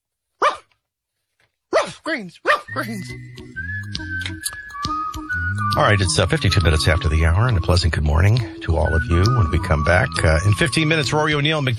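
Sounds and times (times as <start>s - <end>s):
dog barking: 0.4s - 0.7s, 1.7s - 2.8s
speech: 1.9s - 4.7s, 5.8s - 11.7s
sustained whistle-like tone: 2.7s - 11.3s
soft music: 2.7s - 11.7s.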